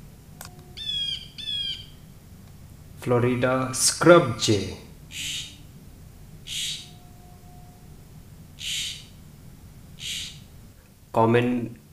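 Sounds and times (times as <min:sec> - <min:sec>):
Blue Jay drawn-out nasal harmonic calls: 0:00.7 - 0:02.0, 0:03.4 - 0:05.7, 0:06.4 - 0:07.6, 0:08.6 - 0:09.2, 0:10.0 - 0:10.5
speech: 0:03.0 - 0:05.4, 0:11.2 - 0:11.8.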